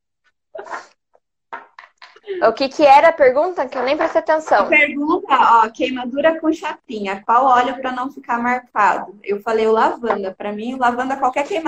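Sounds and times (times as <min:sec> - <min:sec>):
sharp breathy sneezes: 0:00.6 - 0:00.9
speech: 0:02.3 - 0:11.6.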